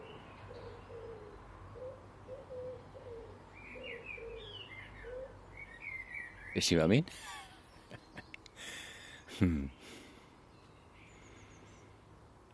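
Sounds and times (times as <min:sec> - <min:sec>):
wood pigeon cooing: 0:00.0 - 0:05.4
higher bird chirps and tweets: 0:00.0 - 0:12.5
steady low outdoor hum: 0:00.0 - 0:12.5
speech: 0:06.6 - 0:07.3, 0:09.4 - 0:09.8.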